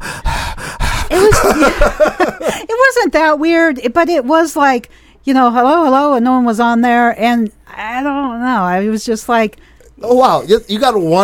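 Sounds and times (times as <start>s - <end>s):
person imitating creepy heavy breathing on a phone call: 0.0s - 1.3s
laughter: 1.1s - 2.6s
speech: 1.5s - 11.2s.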